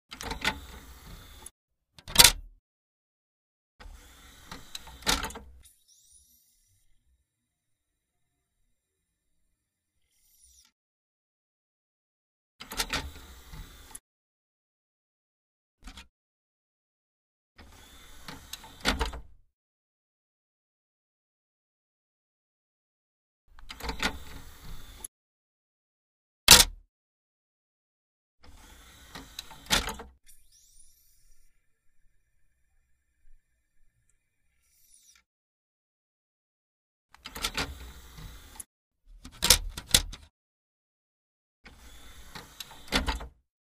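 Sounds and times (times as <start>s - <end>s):
computer CD-DVD drive tray opening and closing: 0.1s - 2.5s, 3.8s - 6.1s, 12.6s - 14.0s, 17.6s - 19.4s, 23.6s - 25.1s, 26.5s - 26.8s, 28.4s - 31.4s, 37.2s - 40.3s, 41.7s - 43.4s.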